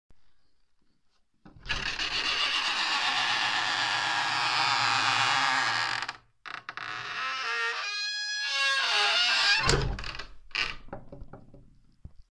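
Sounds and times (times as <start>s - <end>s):
old medieval door: 1.5s - 11.7s.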